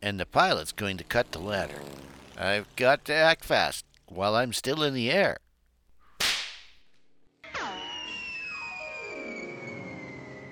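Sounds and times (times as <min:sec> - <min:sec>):
speech: 0:00.0 - 0:05.4
sharp snap: 0:06.1 - 0:07.0
arrow whizzing through the air: 0:06.2 - 0:06.8.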